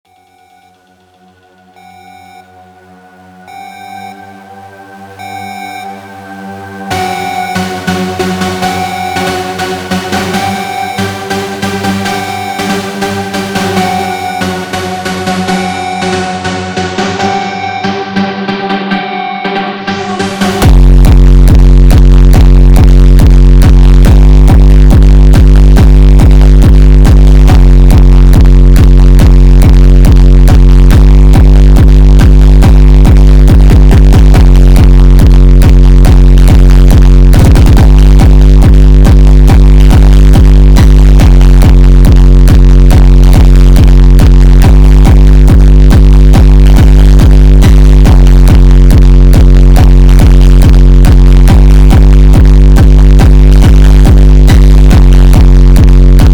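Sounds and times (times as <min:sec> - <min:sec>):
deep bass: 0:00.0 - 0:56.3.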